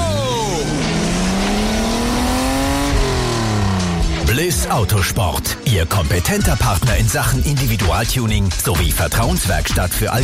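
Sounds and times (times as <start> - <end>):
race car accelerating out of the pit lane on fresh tyres: 0.0 - 6.9
speech: 4.4 - 10.2.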